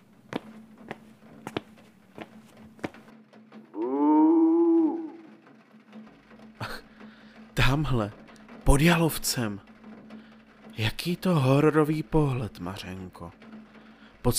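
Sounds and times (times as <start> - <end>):
person imitating a cow mooing in a garden beneath a window: 3.8 - 5.4
speech: 7.7 - 9.7, 10.8 - 13.4.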